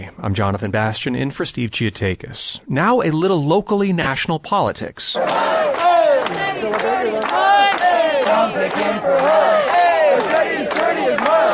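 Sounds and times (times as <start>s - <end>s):
speech: 0.1s - 5.6s, 8.4s - 10.5s
protesters chanting and shouting outside the mayor's residence: 5.2s - 11.5s.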